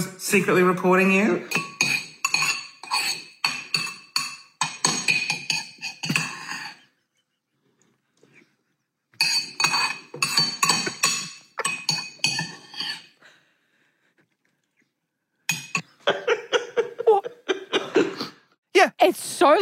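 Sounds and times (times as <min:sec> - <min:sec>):
speech: 0:00.3 - 0:01.6
cutlery and dishes clinking while someone eats breakfast: 0:01.5 - 0:06.9, 0:09.2 - 0:13.1, 0:15.5 - 0:15.8
laughter: 0:15.8 - 0:18.4.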